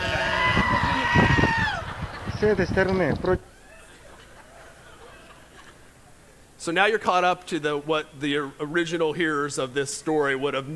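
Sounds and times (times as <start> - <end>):
sheep stuck in a trench bleating: 0.0 - 1.3
laughter: 0.0 - 6.4
speech: 2.4 - 3.6, 6.6 - 10.7.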